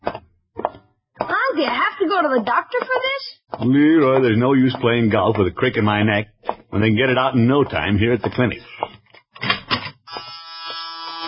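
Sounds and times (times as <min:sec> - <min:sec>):
speech: 0:01.6 - 0:08.8
door buzzer at a clinic entrance: 0:10.0 - 0:11.2.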